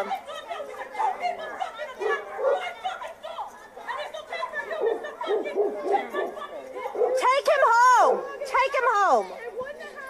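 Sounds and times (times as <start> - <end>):
people chattering: 0.0 - 10.0
several dogs barking in a played video: 1.0 - 2.8, 4.7 - 8.4.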